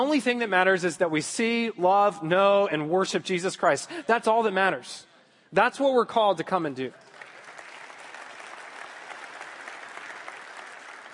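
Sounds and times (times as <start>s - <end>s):
speech: 0.0s - 7.1s
sizable audience applauding: 7.0s - 11.1s.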